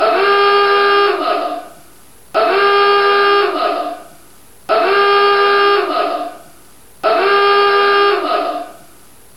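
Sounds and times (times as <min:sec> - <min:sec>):
alarm: 0:00.0 - 0:01.5, 0:02.4 - 0:03.8, 0:04.7 - 0:06.2, 0:07.0 - 0:08.8.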